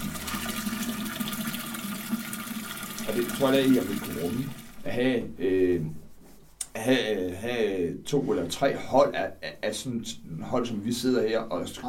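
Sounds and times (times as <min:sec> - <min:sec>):
19 liters of water pouring into a large brewing pot: 0:00.0 - 0:04.8
speech: 0:03.1 - 0:06.0, 0:06.8 - 0:11.8.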